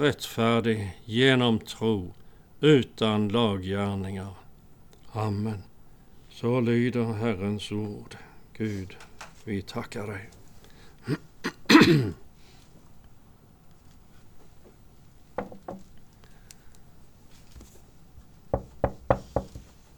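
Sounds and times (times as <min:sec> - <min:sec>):
speech: 0:00.0 - 0:04.4, 0:05.2 - 0:05.7, 0:06.4 - 0:10.4, 0:11.1 - 0:12.2
firm knocking on a door: 0:15.4 - 0:15.9, 0:18.5 - 0:19.6.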